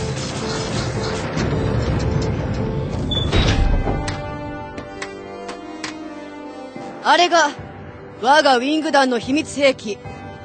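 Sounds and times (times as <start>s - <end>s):
mechanical door sliding open with whirring hum and hiss: 0.3s - 4.7s
speech: 7.1s - 7.6s, 8.2s - 10.1s.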